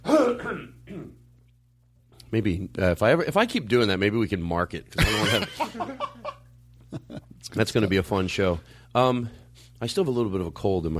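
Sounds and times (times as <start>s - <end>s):
cough-like rasp: 0.0s - 1.2s
raspy throat clearing: 0.0s - 1.2s
speech: 2.3s - 6.4s, 7.5s - 10.9s
laughter: 5.0s - 7.4s.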